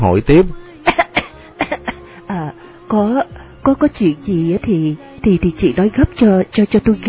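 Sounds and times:
speech: 0.0 - 0.6, 2.9 - 7.0
woman faking heavy coughing as if gravely ill: 0.8 - 2.0.

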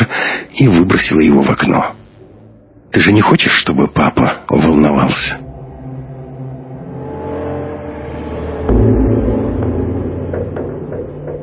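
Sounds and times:
speech: 0.2 - 2.0, 2.9 - 5.4
car engine droning inside a moving car: 5.4 - 11.4.

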